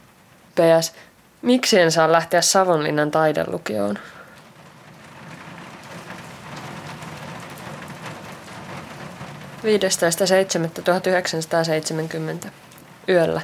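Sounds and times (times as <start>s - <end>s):
rain pattering and splashing: 0.0s - 13.4s
speech: 0.6s - 4.2s, 9.6s - 13.4s.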